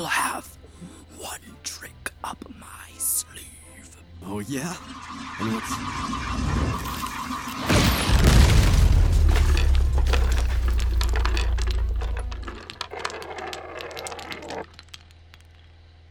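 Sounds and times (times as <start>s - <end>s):
speech: 4.3s - 6.8s
crackling and shattering debris from chessboard explosion: 4.9s - 15.8s
chessboard exploding blast: 5.9s - 12.5s
low rumble from chessboard explosion: 7.9s - 12.8s.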